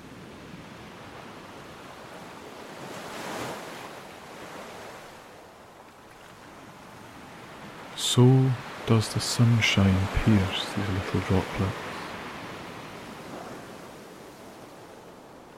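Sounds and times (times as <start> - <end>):
ocean waves breaking and surging: 0.0 - 15.5
wind lifting spray off ocean waves: 0.0 - 15.5
speech: 8.0 - 11.9.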